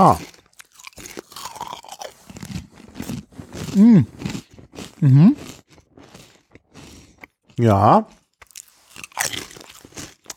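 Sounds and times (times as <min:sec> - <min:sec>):
speech: 0:00.0 - 0:00.3, 0:03.8 - 0:04.2, 0:05.0 - 0:05.4, 0:07.6 - 0:08.2
chewing gummy candy: 0:00.0 - 0:10.3.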